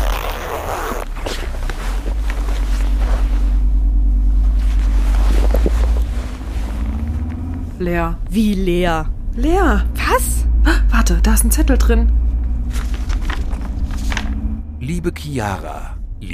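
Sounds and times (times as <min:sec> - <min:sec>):
backpack zipper pulled open: 0:00.0 - 0:03.0
rustling and handling: 0:00.0 - 0:07.8, 0:12.4 - 0:14.5
low rumble inside a moving vehicle: 0:00.0 - 0:16.3
speech: 0:07.8 - 0:10.3, 0:11.0 - 0:12.2, 0:14.9 - 0:16.3.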